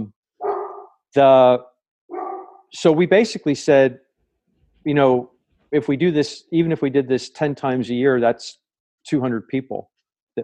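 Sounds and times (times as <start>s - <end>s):
pet dog barking at someone: 0.4s - 1.0s, 2.1s - 2.7s
speech: 1.2s - 1.7s, 2.7s - 4.0s, 4.8s - 10.4s.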